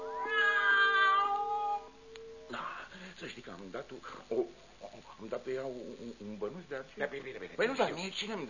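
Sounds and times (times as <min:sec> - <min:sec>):
cat meowing and yowling inside a sack: 0:00.2 - 0:01.9
speech: 0:05.2 - 0:08.4.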